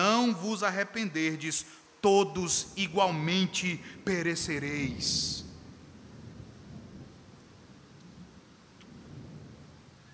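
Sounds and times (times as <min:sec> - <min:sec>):
soft rain-like hiss: 0:00.0 - 0:10.1
speech: 0:00.3 - 0:05.5
thunder rumbling: 0:03.6 - 0:10.1.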